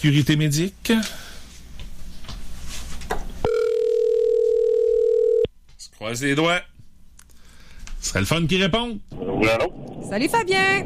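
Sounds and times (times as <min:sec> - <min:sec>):
speech: 0:00.0 - 0:01.2, 0:06.0 - 0:06.7, 0:08.0 - 0:10.8
soft rustling: 0:01.5 - 0:03.1
telephone dial tone: 0:03.5 - 0:05.5.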